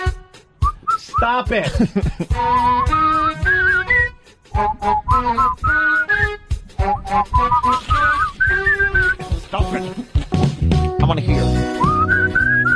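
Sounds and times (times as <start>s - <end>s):
person whistling an upbeat song melody: 0.0s - 1.4s, 2.2s - 9.5s, 11.5s - 12.7s
rhythmic backing music with steady percussive hits: 0.0s - 12.7s
speech: 1.2s - 3.1s, 4.6s - 6.0s, 7.1s - 8.8s, 9.5s - 10.1s, 11.1s - 11.8s
laughter: 1.6s - 2.4s, 8.8s - 10.7s.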